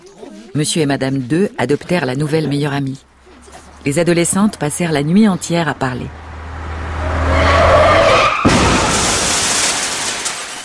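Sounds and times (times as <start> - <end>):
speech: 0.2 - 3.1, 3.8 - 6.2
car tires skidding: 3.0 - 10.5
crashing rumble of a collision: 3.6 - 10.6
truck colliding with a car: 6.1 - 10.6.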